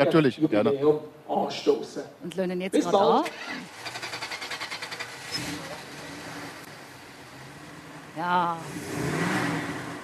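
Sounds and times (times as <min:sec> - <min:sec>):
speech: 0:00.0 - 0:03.8, 0:05.4 - 0:05.8, 0:08.2 - 0:09.2
Monteverdi car engine revving on the Bürgleplatz: 0:03.2 - 0:10.0.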